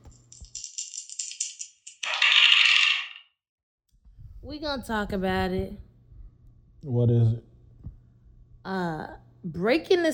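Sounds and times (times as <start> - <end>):
dice rattling and tumbling: 0.0 - 3.2
speech: 4.5 - 5.9, 6.8 - 7.5, 8.7 - 10.1.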